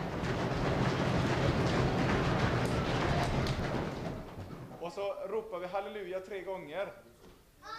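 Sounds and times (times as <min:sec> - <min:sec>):
crowd of people stamping feet to imitate thunder: 0:00.0 - 0:05.2
speech: 0:05.0 - 0:07.1.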